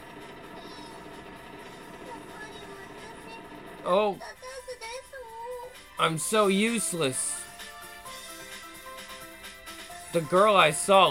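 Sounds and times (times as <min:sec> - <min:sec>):
train idling or rolling through a station with rumbling hum: 0:00.0 - 0:03.9
speech: 0:03.9 - 0:04.4, 0:06.0 - 0:07.3, 0:10.1 - 0:11.0.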